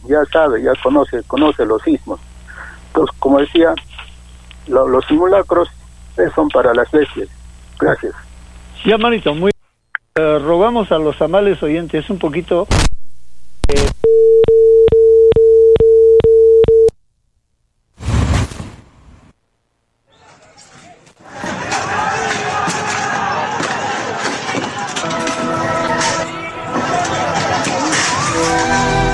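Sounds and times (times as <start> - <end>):
speech: 0.0 - 2.3, 3.0 - 4.0, 4.7 - 9.6, 10.2 - 12.9
phone-line busy tone with clicks after a dropped call: 14.1 - 17.0
crowd chatter: 20.1 - 29.0.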